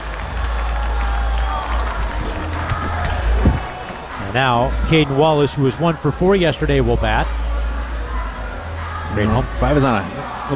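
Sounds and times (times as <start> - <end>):
baseball stadium crowd applauding: 0.0 - 4.3
baseball stadium crowd murmuring: 1.0 - 10.5
speech: 4.4 - 7.4, 9.2 - 10.5.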